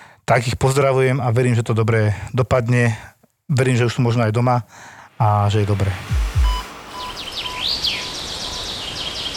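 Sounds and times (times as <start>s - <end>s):
speech: 0.3s - 6.3s
steady outdoor hiss in a Slovak forest: 3.6s - 9.3s
low thumps: 5.2s - 7.3s
bird repeating rising and falling chirps in a Slovak forest: 6.4s - 9.3s.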